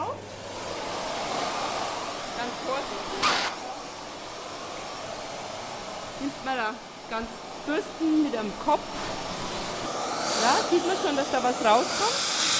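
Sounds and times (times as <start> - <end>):
vacuum cleaner cleaning dust from organ pipes: 0.0 - 12.5
speech: 2.5 - 3.6, 6.2 - 9.4, 10.4 - 12.3.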